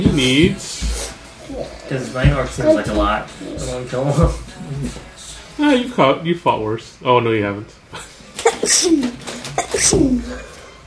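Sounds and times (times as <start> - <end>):
speech: 0.0 - 0.9, 1.5 - 10.5
sneeze: 8.4 - 10.3.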